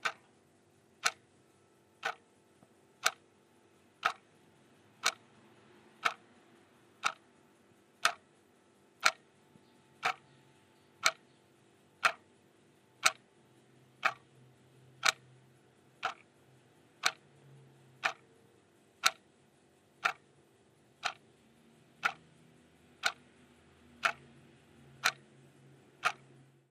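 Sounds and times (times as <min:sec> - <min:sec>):
clock ticking: 0:00.0 - 0:00.3, 0:01.0 - 0:03.3, 0:04.0 - 0:04.4, 0:05.0 - 0:05.4, 0:06.0 - 0:06.4, 0:07.0 - 0:07.4, 0:08.0 - 0:11.3, 0:11.9 - 0:15.4, 0:16.0 - 0:18.4, 0:19.0 - 0:21.4, 0:22.0 - 0:25.4, 0:26.0 - 0:26.4.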